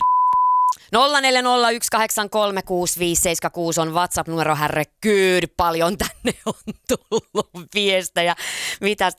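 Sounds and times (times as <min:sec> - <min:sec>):
censor bleep tone: 0:00.0 - 0:00.8
speech: 0:00.9 - 0:09.1.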